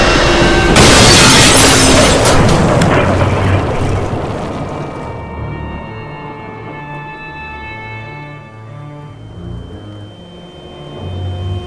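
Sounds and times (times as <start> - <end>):
tree crashing down: 0.7 - 5.4.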